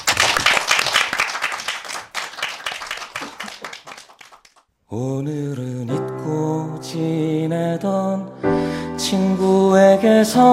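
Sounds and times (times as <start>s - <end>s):
audience applause: 0.0s - 4.6s
speech: 4.9s - 8.4s, 9.0s - 10.5s.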